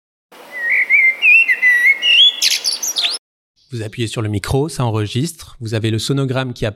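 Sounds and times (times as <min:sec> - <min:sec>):
Eurasian blackbird singing: 0:00.5 - 0:03.8
speech: 0:03.7 - 0:06.7.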